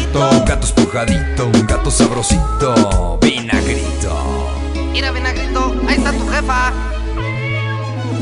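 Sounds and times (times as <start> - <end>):
speech: 0.1 - 4.3, 4.9 - 7.0
cat meowing: 7.1 - 8.1.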